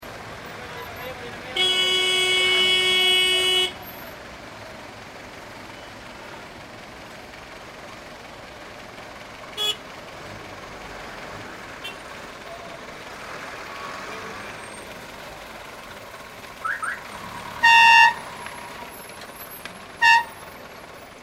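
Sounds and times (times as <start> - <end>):
vehicle horns and klaxons at a bus stop: 0.7 - 4.0, 9.6 - 9.8, 11.8 - 12.0, 16.6 - 18.8, 20.0 - 20.6.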